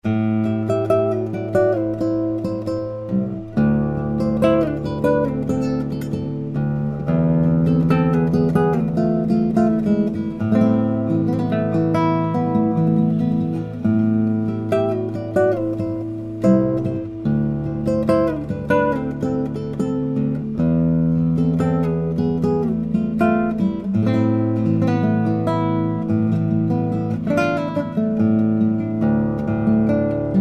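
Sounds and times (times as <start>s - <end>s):
eight-string classical guitar playing: 0.0s - 30.3s.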